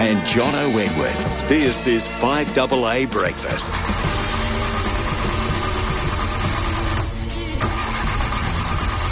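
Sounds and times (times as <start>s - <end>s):
speech: 0.0s - 4.3s
car engine cranking and struggling to start: 3.4s - 9.0s.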